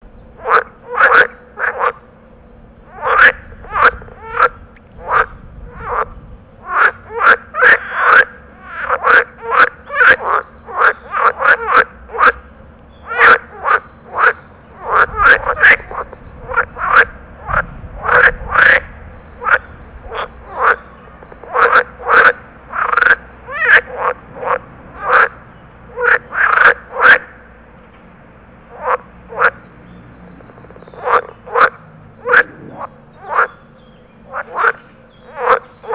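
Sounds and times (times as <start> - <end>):
green frog territorial call: 0.4 - 2.1, 2.9 - 27.4, 28.7 - 29.6, 30.5 - 35.9.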